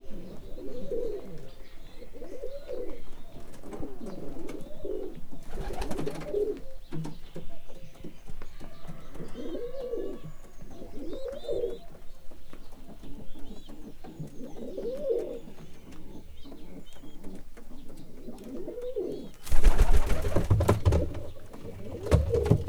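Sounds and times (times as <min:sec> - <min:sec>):
standard-breed pigeons cooing at a zoo in Miskolc, Hungary: 0:00.0 - 0:22.6
rustling: 0:19.3 - 0:22.6.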